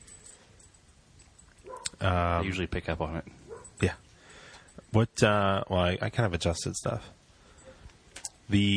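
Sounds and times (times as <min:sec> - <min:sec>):
dog barking from another floor: 0:01.6 - 0:02.0, 0:03.5 - 0:03.8
speech: 0:02.0 - 0:04.0, 0:04.9 - 0:07.2, 0:08.5 - 0:08.7.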